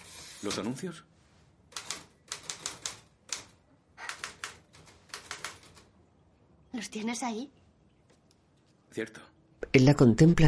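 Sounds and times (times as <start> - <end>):
speech: 0.4 - 1.1, 6.8 - 7.6, 9.0 - 10.4
typewriter keys clacking in a newspaper editorial office: 1.7 - 5.9.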